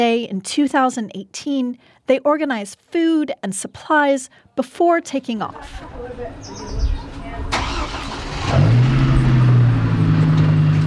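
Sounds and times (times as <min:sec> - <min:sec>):
speech: 0:00.0 - 0:07.1
faint voices outdoors: 0:04.4 - 0:10.8
car engine starting and idling in rural Redding California: 0:05.5 - 0:10.8
bird chirp: 0:06.0 - 0:07.4.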